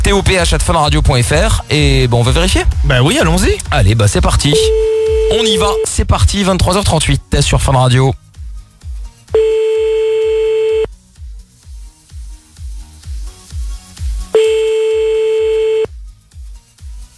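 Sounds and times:
rhythmic music beat: 0:00.1 - 0:06.6, 0:13.0 - 0:15.9
speech: 0:00.1 - 0:08.2
telephone ringback tone on an unanswered outgoing call: 0:04.6 - 0:05.8, 0:09.4 - 0:10.9, 0:14.4 - 0:15.9.

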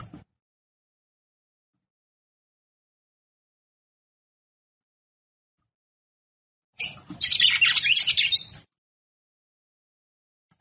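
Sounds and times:
female red-cowled cardinal song with rising whistled slur: 0:06.8 - 0:08.7.

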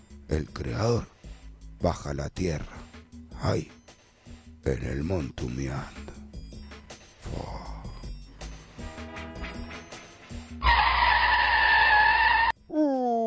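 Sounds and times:
speech: 0:00.3 - 0:01.1, 0:01.8 - 0:02.8, 0:03.4 - 0:03.8, 0:04.6 - 0:06.2
car braking hard with tires skidding: 0:10.6 - 0:12.5.

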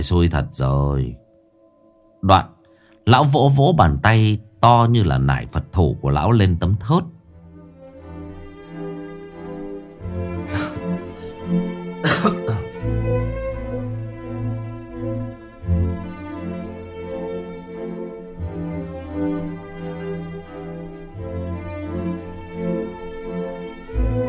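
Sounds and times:
speech: 0:00.0 - 0:01.2, 0:02.2 - 0:07.2
steady sustained tonal background: 0:00.0 - 0:06.4, 0:07.1 - 0:24.2
old man in a kitchen clearing his throat: 0:10.5 - 0:10.8, 0:12.0 - 0:12.7.

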